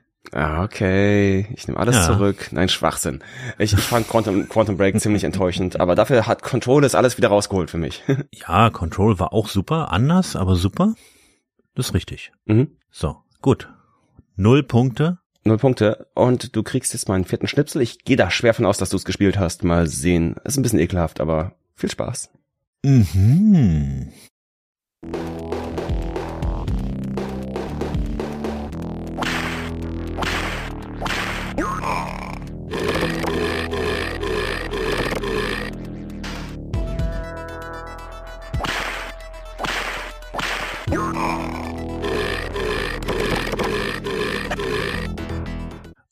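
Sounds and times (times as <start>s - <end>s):
speech: 0.3s - 11.2s, 11.8s - 13.8s, 14.4s - 24.3s, 25.0s - 25.3s
laughter: 1.9s - 2.4s, 3.5s - 5.4s
busy upbeat video game music: 25.0s - 46.0s
burps and fart noises from a jump-and-run video game: 31.5s - 35.8s, 40.9s - 45.2s.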